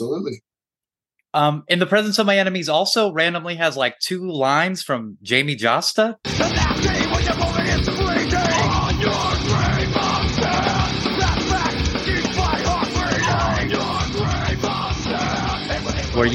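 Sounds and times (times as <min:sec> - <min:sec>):
speech: 0:00.0 - 0:00.5, 0:01.3 - 0:07.9
dense loud distorted hardcore band music with guitars and drums: 0:06.2 - 0:16.3
hoarse male guest vocalist yelling lines: 0:06.4 - 0:16.3.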